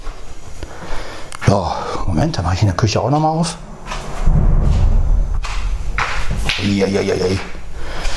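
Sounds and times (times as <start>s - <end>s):
speech: 1.5s - 3.7s, 6.6s - 7.6s
thunder from a nearby storm rumbling and cracking: 3.2s - 8.1s.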